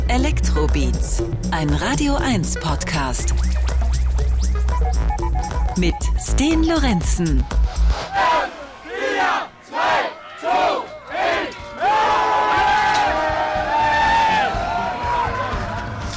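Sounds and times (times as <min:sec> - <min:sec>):
speech: 0:00.1 - 0:03.8, 0:04.8 - 0:08.5
large crowd of festival fans shouting a countdown as gates open: 0:08.0 - 0:16.0.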